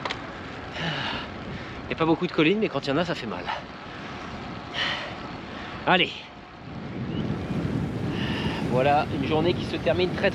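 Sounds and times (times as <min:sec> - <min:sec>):
wind buffeting the microphone on the North Sea coast: 0:00.0 - 0:10.3
speech: 0:01.9 - 0:03.8, 0:05.8 - 0:06.3, 0:08.7 - 0:10.3
sea waves on the North Sea coast: 0:07.6 - 0:10.3.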